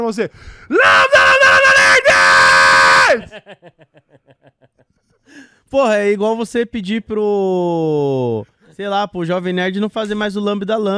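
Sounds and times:
speech: 0.0s - 2.5s, 3.1s - 10.9s
breathy panting or chuckling gasps: 0.3s - 0.7s, 5.1s - 5.7s
man screaming: 0.7s - 3.3s
laughter: 3.1s - 5.3s.

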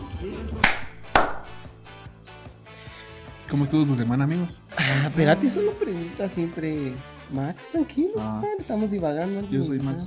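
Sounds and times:
hand claps: 0.6s - 1.8s
speech: 3.5s - 10.0s.

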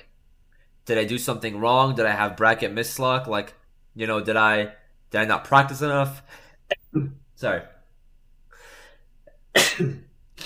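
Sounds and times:
speech: 0.9s - 7.8s, 9.6s - 10.1s
person sneezing: 9.5s - 10.4s.

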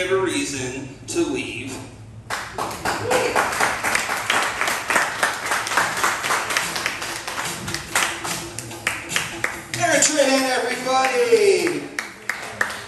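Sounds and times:
speech: 0.0s - 2.0s
audience applause: 2.3s - 9.8s, 10.7s - 12.8s.

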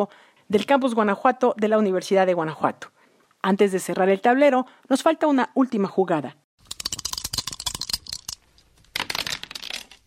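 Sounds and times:
speech: 0.0s - 6.4s
dice rolling and clattering: 6.6s - 10.0s.

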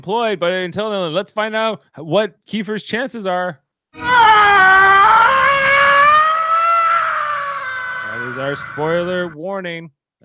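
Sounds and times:
speech: 0.0s - 4.7s, 8.4s - 10.2s
man screaming in a film clip: 4.0s - 9.4s.

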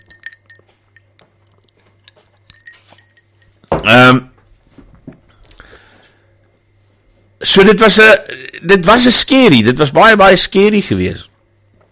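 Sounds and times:
glass clinking and tapping against a hard surface: 0.0s - 1.2s, 2.4s - 3.8s
low steady hum: 0.0s - 11.9s
speech: 3.8s - 4.3s, 7.6s - 11.3s.

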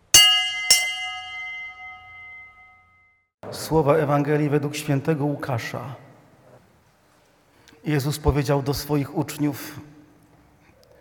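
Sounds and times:
church bell ringing: 0.0s - 3.1s
speech: 3.5s - 6.0s, 7.8s - 9.9s.

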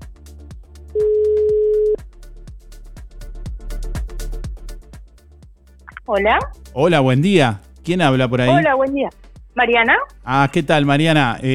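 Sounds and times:
upbeat music bed with a steady beat: 0.0s - 11.5s
telephone ringing tone while placing call: 1.0s - 2.0s
speech: 6.1s - 11.5s.

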